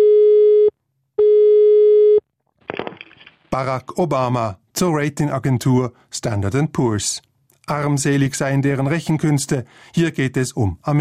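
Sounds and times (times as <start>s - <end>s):
telephone line tone: 0.0s - 2.2s
speech: 3.6s - 10.9s.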